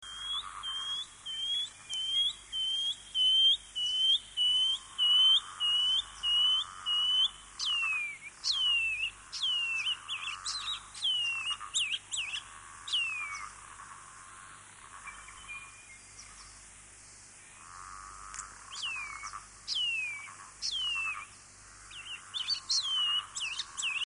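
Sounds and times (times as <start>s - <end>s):
Shining Cuckoo bird calls: 0.0s - 13.5s, 18.4s - 21.3s, 21.9s - 24.0s.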